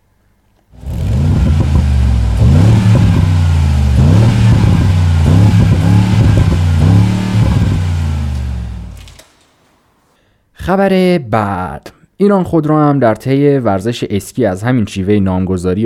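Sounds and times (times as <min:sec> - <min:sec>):
Mercedes G-Class engine revving: 0:00.8 - 0:09.2
speech: 0:10.7 - 0:15.8.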